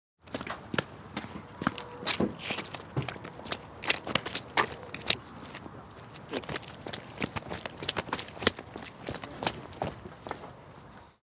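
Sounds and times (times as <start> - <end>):
footsteps moving through a puddle: 0.2 - 11.2.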